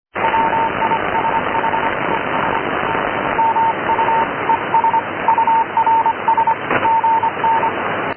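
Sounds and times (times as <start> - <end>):
noise: 0.1 - 8.1.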